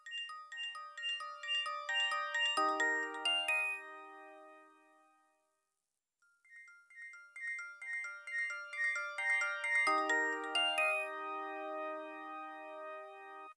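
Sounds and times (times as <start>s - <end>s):
Nokia 2600 phone ringtone: 0.0s - 4.4s, 6.5s - 12.2s.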